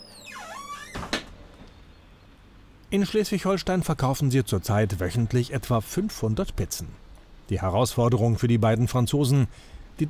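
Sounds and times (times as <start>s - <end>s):
door pushed shut with a dull thud and click: 0.0s - 1.5s
speech: 2.9s - 10.0s.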